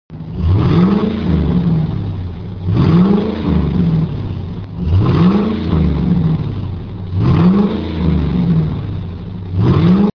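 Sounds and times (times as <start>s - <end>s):
F-250 V10 6.8L engine: 0.1s - 10.1s.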